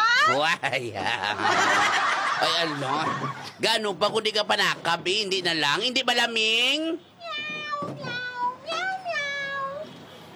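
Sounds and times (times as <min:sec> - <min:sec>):
laughter: 0:00.0 - 0:03.6
speech: 0:00.3 - 0:07.4
cat meowing in long wavering calls: 0:07.2 - 0:10.0.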